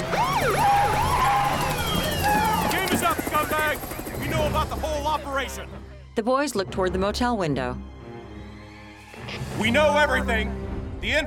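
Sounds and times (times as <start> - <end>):
wailing sirens of police and FBI vehicles pulling up to a building: 0.0 - 5.2
speech: 4.5 - 7.9, 9.3 - 11.2.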